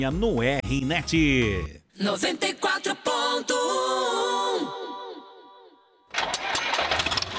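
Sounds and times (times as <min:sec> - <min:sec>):
speech: 0:00.0 - 0:04.4
tractor engine cranking with a whining starter and starting: 0:06.1 - 0:07.3.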